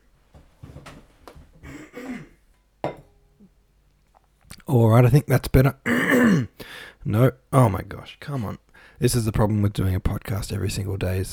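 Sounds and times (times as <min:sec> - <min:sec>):
throat clearing: 0:01.6 - 0:02.4, 0:05.9 - 0:06.6
glass of water being set down: 0:02.5 - 0:03.2
speech: 0:04.7 - 0:11.3.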